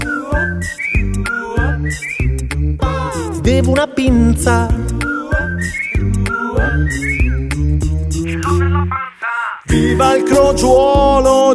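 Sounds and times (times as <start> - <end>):
whistled melody with short sliding notes: 0.0 - 3.3, 4.6 - 8.6, 9.7 - 11.5
rhythmic musical accompaniment: 0.0 - 11.5
speech: 1.9 - 2.2, 3.5 - 4.9, 6.8 - 7.4, 9.8 - 11.5.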